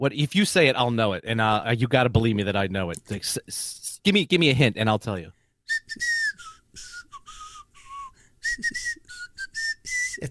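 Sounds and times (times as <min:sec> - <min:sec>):
speech: 0:00.0 - 0:06.2, 0:08.6 - 0:08.9
person whistling a short cartoon tune: 0:05.7 - 0:10.2.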